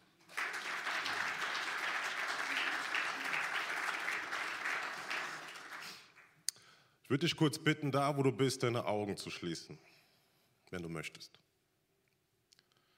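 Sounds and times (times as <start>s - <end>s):
crowd applauding the worship team: 0.0s - 6.3s
speech: 7.1s - 9.9s, 10.7s - 11.4s.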